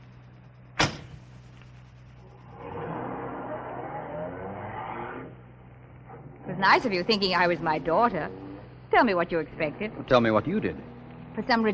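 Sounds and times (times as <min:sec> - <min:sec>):
car engine idling and pulling away: 0:00.0 - 0:11.7
sharp thump: 0:00.8 - 0:01.3
speech: 0:06.6 - 0:11.7.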